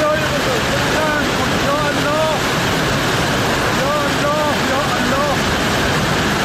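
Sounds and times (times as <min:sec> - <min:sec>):
rushing floodwater roar: 0:00.0 - 0:06.4.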